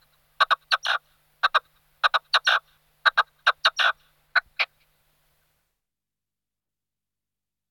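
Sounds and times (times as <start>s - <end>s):
red-legged partridge Alectoris rufa calling: 0.0s - 4.9s.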